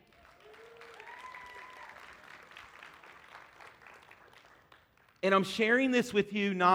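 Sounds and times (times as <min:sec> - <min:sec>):
sustained applause from a sizable audience: 0:00.0 - 0:05.2
faint voices or whoops: 0:00.2 - 0:02.2
speech: 0:05.2 - 0:06.7.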